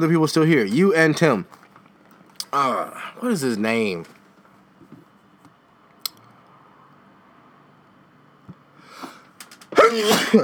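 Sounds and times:
speech: 0.0 - 1.6, 2.5 - 4.2, 9.8 - 10.4
single breathy sneeze: 9.0 - 10.4.

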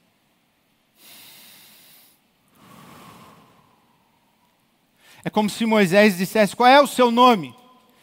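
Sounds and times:
person breathing in and out: 1.0 - 5.2
speech: 5.2 - 7.6.

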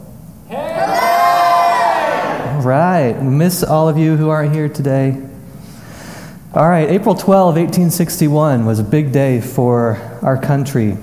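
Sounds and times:
large group of people shouting hello together: 0.5 - 2.6
speech: 2.6 - 5.3, 6.6 - 11.0.

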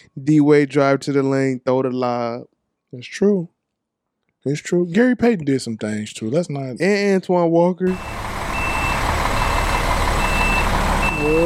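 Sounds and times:
speech: 0.1 - 3.5, 4.4 - 8.2, 11.2 - 11.4
bus reversal alarm beeping outside: 7.9 - 11.4
low bus engine rumble: 7.9 - 11.4.

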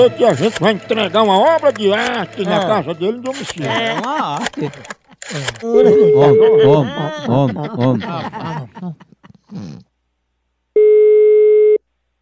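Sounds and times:
laughter: 0.0 - 9.8
speech: 0.0 - 9.9
telephone line tone while placing a call: 5.6 - 6.8, 10.8 - 11.8.

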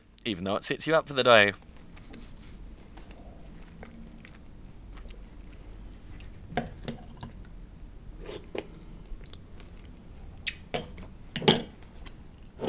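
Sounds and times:
speech: 0.2 - 2.2
crunchy chewing of breakfast: 1.5 - 11.2.

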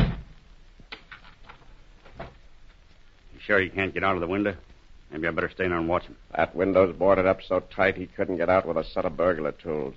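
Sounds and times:
room door thudding shut: 0.0 - 0.4
faint hiss: 0.0 - 9.9
speech: 3.5 - 9.9.

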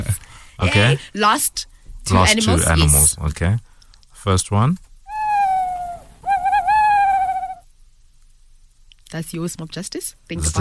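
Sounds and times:
speech: 0.6 - 4.8, 9.1 - 10.5
owl hooting: 5.1 - 7.6.

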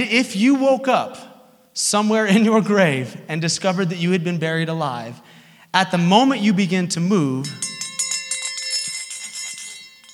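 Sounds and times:
speech: 0.0 - 1.2, 1.8 - 7.7
small bell on a string ringing rapidly at a grave: 7.4 - 10.1.

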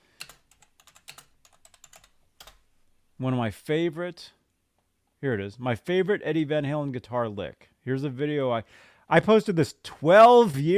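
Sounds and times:
computer keyboard typing: 0.2 - 2.6
speech: 3.2 - 4.4, 5.2 - 10.7.

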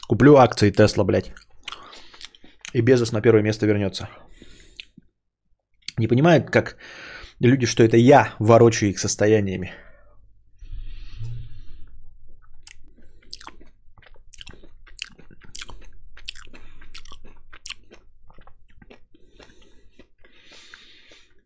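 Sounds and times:
speech: 0.1 - 1.5, 2.7 - 4.5, 6.0 - 9.8
person chewing a tangerine: 1.2 - 3.2, 4.2 - 5.1, 10.8 - 21.4.

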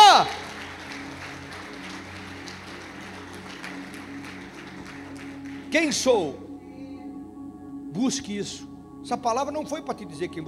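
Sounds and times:
audience clapping: 0.0 - 6.1
low sustained musical drone: 0.0 - 10.4
speech: 5.7 - 6.4, 8.0 - 10.4.

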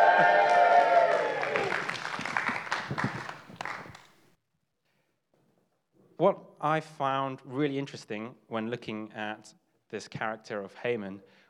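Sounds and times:
crowd cheering loudly: 0.0 - 4.0
people whooping: 0.0 - 4.0
speech: 0.2 - 0.4, 6.2 - 11.4.

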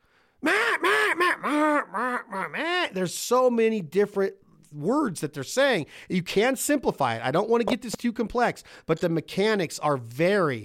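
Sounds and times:
duck call giving raspy quacks: 0.4 - 2.6
speech: 2.9 - 10.6.

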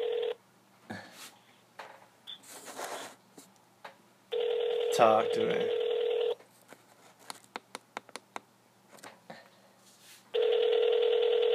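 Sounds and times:
phone line electronic tone: 0.0 - 0.4, 4.3 - 6.4, 10.4 - 11.5
speech: 5.0 - 5.8.

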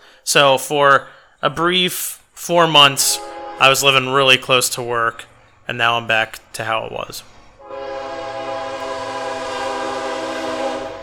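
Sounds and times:
speech: 0.2 - 7.4
passing train rumbling: 2.8 - 11.0
train horn blaring: 2.9 - 4.2, 7.6 - 11.0.

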